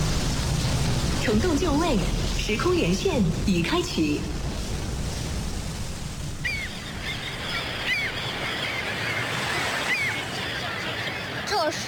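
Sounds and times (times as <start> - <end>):
ocean waves rushing at a large naval harbor: 0.0 - 11.8
speech: 1.3 - 4.4
short bird calls: 6.4 - 11.8.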